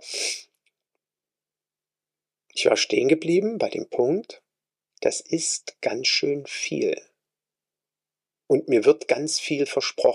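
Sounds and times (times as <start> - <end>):
person sneezing: 0.0 - 0.5
speech: 2.6 - 4.4, 5.0 - 7.1, 8.5 - 10.1.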